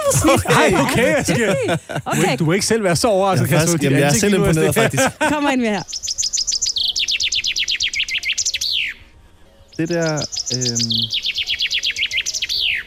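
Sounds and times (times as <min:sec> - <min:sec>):
laughter: 0:00.0 - 0:05.8
speech: 0:00.1 - 0:06.1, 0:09.8 - 0:11.3
chaffinch singing: 0:03.4 - 0:12.8.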